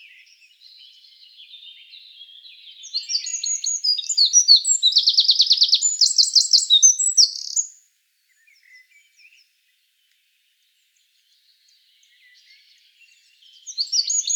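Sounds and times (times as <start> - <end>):
Eurasian wren Troglodytes troglodytes song: 0.0 - 7.8, 12.0 - 14.3.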